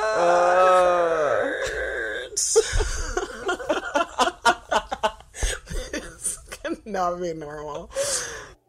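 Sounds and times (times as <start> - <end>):
people groaning together: 0.0 - 3.8
laughter: 2.5 - 6.4
speech: 7.0 - 8.3.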